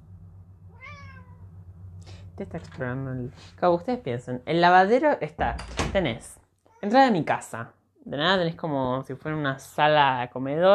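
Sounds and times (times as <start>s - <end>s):
steady low hum: 0.0s - 6.6s
cat meowing: 0.7s - 1.5s
speech: 2.4s - 10.7s.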